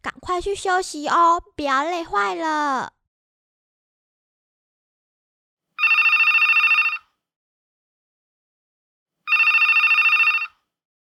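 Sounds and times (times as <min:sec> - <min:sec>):
speech: 0:00.3 - 0:03.0
telephone ringing with rapid electronic trill: 0:05.8 - 0:07.1, 0:09.3 - 0:10.7.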